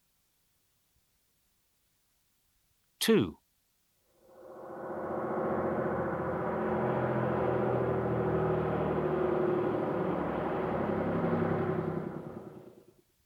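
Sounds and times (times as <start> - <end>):
speech: 3.0 - 3.4
bus engine humming and rumbling: 4.3 - 12.9.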